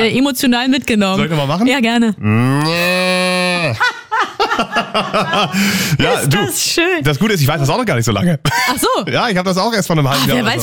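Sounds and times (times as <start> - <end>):
speech: 0.0 - 4.0, 4.6 - 10.6
person imitating a cow mooing: 2.2 - 3.8
laughter: 3.7 - 5.6, 8.5 - 9.0.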